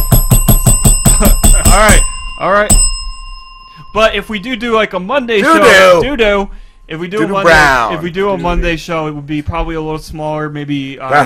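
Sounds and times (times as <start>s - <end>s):
bell sound effect ringing: 0.0s - 8.3s
speech: 1.2s - 2.8s, 3.9s - 11.2s.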